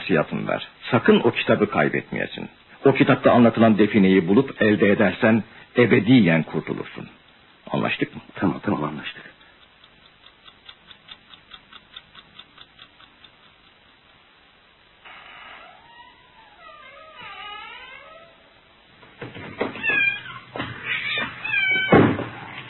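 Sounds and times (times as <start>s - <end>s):
speech: 0.1s - 9.3s
clock ticking: 6.6s - 14.9s
cat meowing: 19.7s - 22.1s.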